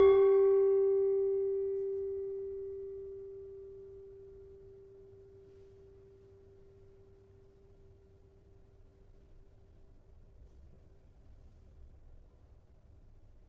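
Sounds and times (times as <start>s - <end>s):
tuned gamelan demung in G: 0.0s - 5.4s.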